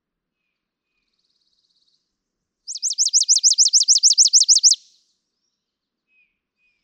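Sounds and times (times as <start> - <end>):
chipping sparrow singing a dry high trill: 2.7 - 4.8.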